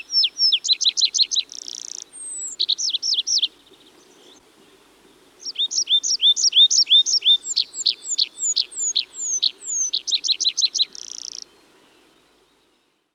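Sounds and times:
Tree Pipit Anthus trivialis song: 0.0 - 13.1.

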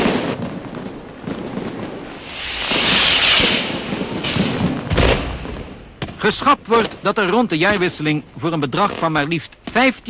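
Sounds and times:
fireworks and firecrackers cracking and booming: 0.0 - 10.0
hissing whoosh: 2.1 - 5.5
speech: 6.3 - 10.0.

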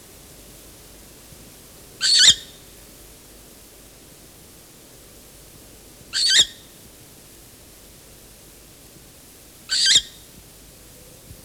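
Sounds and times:
short-eared owl on a nest with young making harsh breathy hiss calls: 2.0 - 2.6, 6.2 - 6.6, 9.7 - 10.2.

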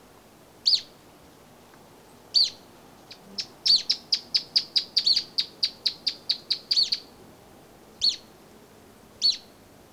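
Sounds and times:
Bolivian earthcreeper Upucerthia harterti chipping: 2.4 - 7.1, 9.2 - 9.5.

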